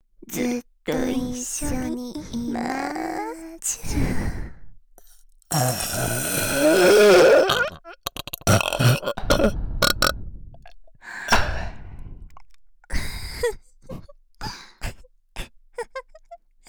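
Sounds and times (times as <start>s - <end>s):
speech: 0.3s - 2.8s
breathy vocal sounds: 2.2s - 12.3s
loud exaggerated burp: 5.5s - 10.7s
small gulps: 5.5s - 10.8s.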